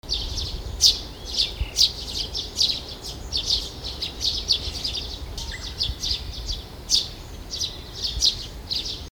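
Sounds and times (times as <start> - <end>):
Eurasian tree sparrow chirping: 0.0 - 9.1
constant low rumbling background noise: 0.0 - 9.1.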